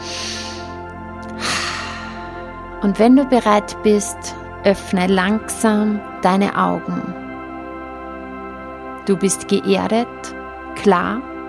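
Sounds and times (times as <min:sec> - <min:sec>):
deep breath during a guided meditation: 0:00.0 - 0:02.7
steady sustained music: 0:00.0 - 0:11.4
speech: 0:02.8 - 0:07.2, 0:09.1 - 0:11.3.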